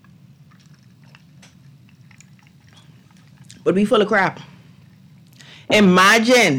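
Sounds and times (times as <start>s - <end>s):
person sipping a drink from a cup: 0.0s - 3.7s, 4.4s - 5.7s
low steady hum: 0.0s - 6.5s
speech: 3.6s - 4.5s, 5.7s - 6.5s.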